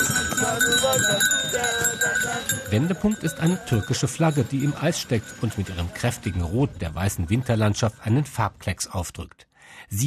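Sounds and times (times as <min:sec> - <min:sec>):
horse hooves clip-clopping on ice pulling sleighs: 0:00.0 - 0:08.2
small bells on horses jingling: 0:00.0 - 0:08.6
speech: 0:00.6 - 0:10.0.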